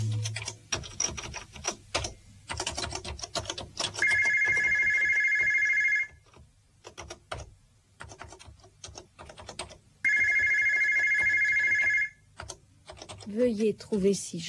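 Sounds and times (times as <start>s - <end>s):
clattering keyboard typing: 0.1s - 13.4s
telephone on office reception switchboard ringing: 4.0s - 6.2s, 10.1s - 12.2s
speech: 13.8s - 14.4s.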